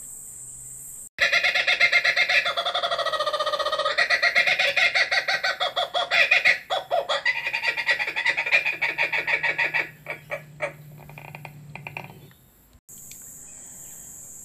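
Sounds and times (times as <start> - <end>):
kookaburra laughing call: 1.2 - 12.3.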